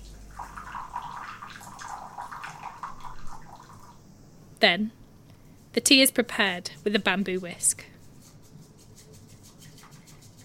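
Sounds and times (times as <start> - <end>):
hot water pouring into a tea bowl: 0.0 - 4.0
speech: 4.6 - 5.0, 5.8 - 7.9.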